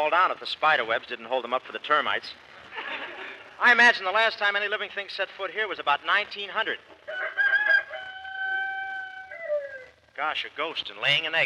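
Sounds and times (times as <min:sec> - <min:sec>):
speech: 0:00.0 - 0:06.9, 0:10.2 - 0:11.4
laughter: 0:02.7 - 0:03.6
rooster crowing: 0:07.0 - 0:10.0.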